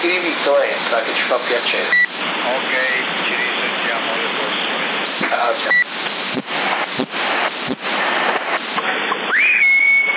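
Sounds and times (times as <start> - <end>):
hissing CB radio static on the 27 MHz band: 0.0 - 10.1
speech: 0.5 - 2.8, 5.4 - 6.5
person whistling over a CB radio channel: 9.3 - 10.1.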